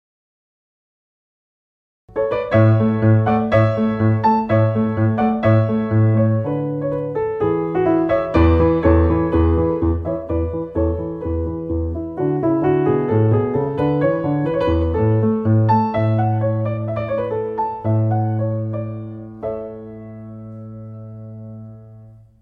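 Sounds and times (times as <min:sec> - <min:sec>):
music: 0:02.1 - 0:22.4.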